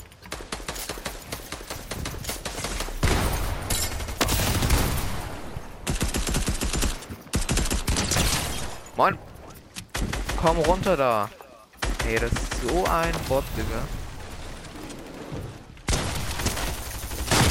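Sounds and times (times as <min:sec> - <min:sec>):
video game gunfire in rapid bursts: 0:00.2 - 0:08.8, 0:11.8 - 0:15.2, 0:15.9 - 0:17.4
speech: 0:09.0 - 0:09.3, 0:10.4 - 0:11.4, 0:12.0 - 0:14.0.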